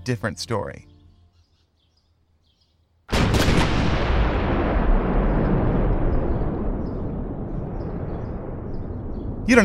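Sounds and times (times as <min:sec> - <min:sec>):
speech: 0:00.0 - 0:00.9, 0:09.5 - 0:09.6
explosions in Post Texas: 0:03.1 - 0:09.6.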